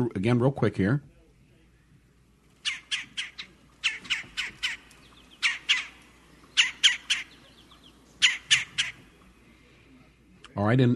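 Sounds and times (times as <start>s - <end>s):
speech: 0.0s - 1.1s, 10.6s - 10.9s
red-bellied woodpecker churring calls: 2.5s - 9.5s.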